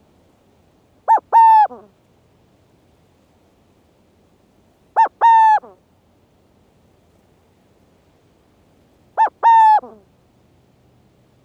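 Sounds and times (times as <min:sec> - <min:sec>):
burrowing owl calling: 0:01.1 - 0:01.8, 0:05.0 - 0:05.6, 0:09.2 - 0:10.0
speech: 0:01.7 - 0:02.0, 0:09.8 - 0:10.2.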